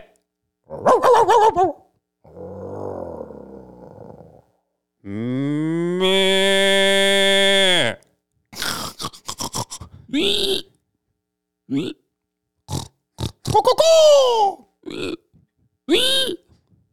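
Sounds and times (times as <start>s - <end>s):
person imitating a pig squealing and grunting: 0.7s - 4.4s, 5.0s - 10.8s, 11.7s - 12.0s, 12.7s - 15.3s, 15.9s - 16.6s.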